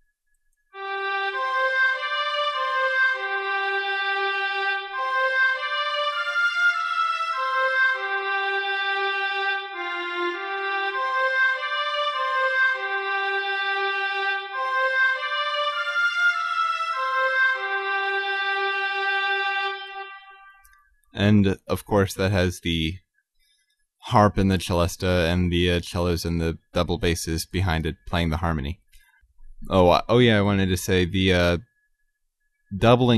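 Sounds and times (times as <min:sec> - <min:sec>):
oboe, flute and violins playing one melody in unison and octaves: 0:00.8 - 0:20.8
speech: 0:21.3 - 0:23.0, 0:24.1 - 0:28.8, 0:29.6 - 0:31.7, 0:32.7 - 0:33.1.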